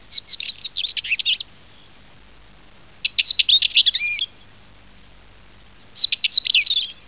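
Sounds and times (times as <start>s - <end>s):
Oenanthe oenanthe calling: 0.0s - 2.1s, 3.0s - 4.6s, 5.8s - 7.0s.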